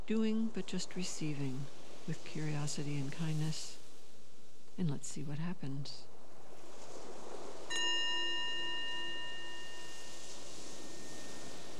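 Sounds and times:
faint hiss: 0.0s - 11.7s
speech: 0.1s - 3.8s, 4.8s - 6.1s
meditation bell ringing: 7.7s - 10.1s.

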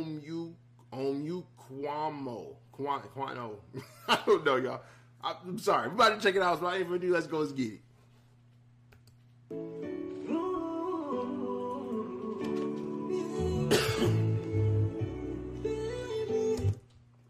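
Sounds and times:
speech: 0.2s - 7.8s, 9.5s - 9.9s
steady sustained music: 9.5s - 17.0s
person coughing: 13.7s - 14.3s.

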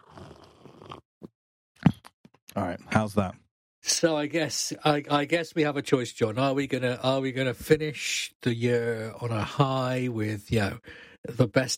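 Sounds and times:
person slurping a cappuccino: 0.0s - 1.1s
speech: 2.6s - 11.7s.

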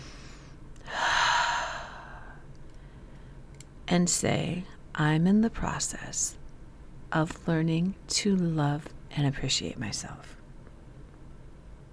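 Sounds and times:
deep breath during a guided self-affirmation exercise: 0.0s - 3.4s
speech: 3.9s - 6.4s, 7.1s - 10.4s.

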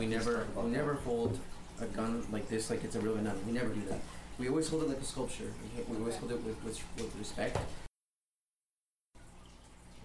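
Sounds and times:
melted crayon wax pouring from a pot: 0.0s - 7.9s
speech: 0.1s - 7.9s.

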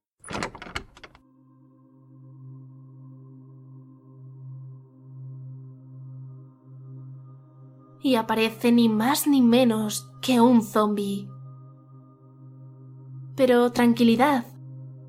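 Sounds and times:
hallway door sliding open with a rattling clatter: 0.2s - 1.2s
speech: 8.0s - 11.3s, 13.4s - 14.5s.

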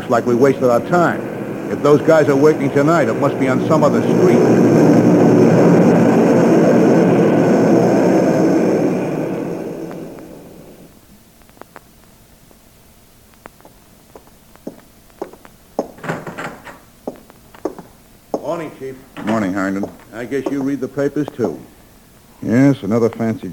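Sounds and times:
airplane roaring overhead: 0.0s - 10.9s
speech: 0.1s - 4.9s, 20.3s - 21.8s, 22.4s - 23.5s.

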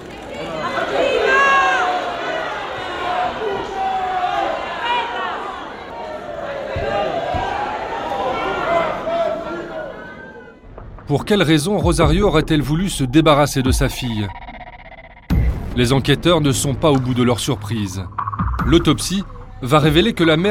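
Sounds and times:
large angry crowd shouting outside a house: 0.0s - 10.7s
speech: 11.1s - 14.4s, 15.8s - 20.4s.

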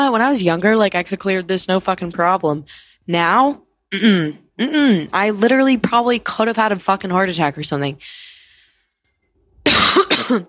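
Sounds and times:
speech: 0.0s - 8.3s, 9.6s - 10.4s
person coughing harshly: 9.7s - 10.4s.

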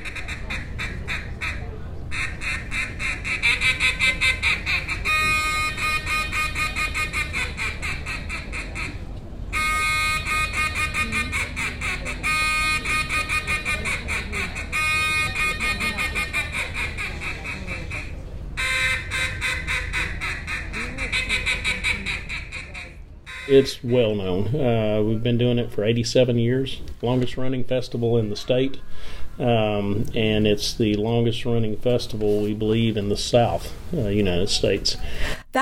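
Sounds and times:
duck calls blown at a world champion duck calling competition: 0.0s - 24.4s
speech: 23.5s - 35.3s.

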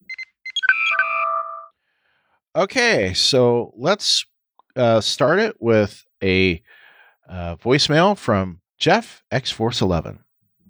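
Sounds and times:
sci-fi communicator short electronic blips: 0.1s - 1.7s
sci-fi communicator layered chiming warbling tones: 0.5s - 1.7s
speech: 2.6s - 10.2s.

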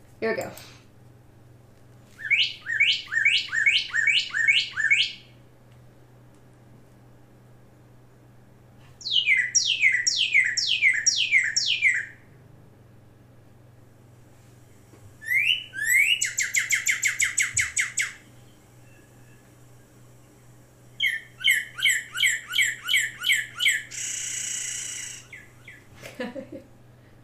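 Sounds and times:
faint steady hum: 0.0s - 27.2s
speech: 0.2s - 0.8s
bird singing downward-sweeping whistles with buzzy trills: 2.2s - 5.3s, 9.0s - 12.2s, 15.2s - 20.4s, 21.0s - 25.8s.

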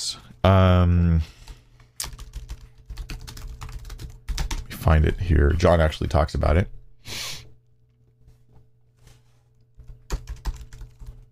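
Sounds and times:
faint steady electrical hum: 0.0s - 11.3s
speech: 0.1s - 1.4s, 4.8s - 7.2s
computer keyboard typing: 2.0s - 4.7s, 9.8s - 11.3s.

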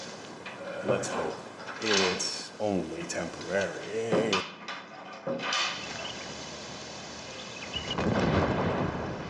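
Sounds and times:
speech: 0.9s - 4.5s
mortar launch explosion: 7.8s - 9.2s.

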